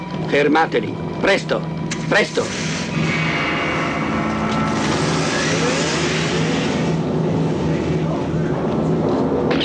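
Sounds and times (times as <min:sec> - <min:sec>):
speech: 0:00.2 - 0:03.1
car engine revving as the car drives away: 0:02.9 - 0:09.5.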